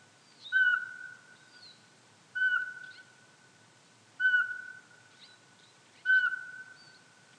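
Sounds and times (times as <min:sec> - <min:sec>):
Eurasian pygmy owl fluty whistle: 0:00.4 - 0:01.2, 0:02.4 - 0:03.0, 0:04.2 - 0:04.8, 0:06.0 - 0:06.9.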